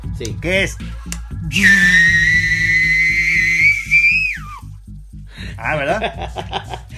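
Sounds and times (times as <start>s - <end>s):
speech: 0.1s - 2.4s, 5.6s - 6.9s
loud sustained human whistle with turbine-like whine: 1.5s - 4.7s
laughter: 5.8s - 6.9s.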